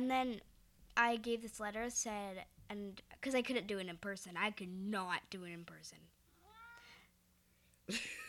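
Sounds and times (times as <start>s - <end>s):
speech: 0.0s - 6.2s, 7.9s - 8.2s
cat meowing: 6.4s - 7.0s.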